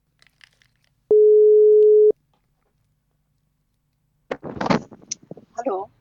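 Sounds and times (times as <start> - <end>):
telephone line tone while a radio host dials a guest: 1.1 - 2.1
voices: 5.6 - 5.9.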